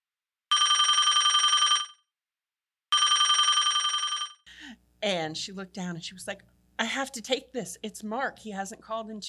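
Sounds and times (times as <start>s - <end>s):
telephone bell ringing: 0.5s - 2.1s, 2.9s - 4.5s
speech: 5.0s - 9.2s.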